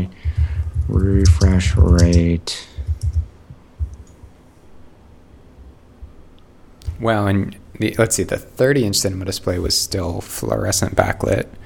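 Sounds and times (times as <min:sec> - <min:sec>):
soft typing on a computer keyboard: 0:00.2 - 0:04.0
speech: 0:00.9 - 0:02.7, 0:07.0 - 0:11.6.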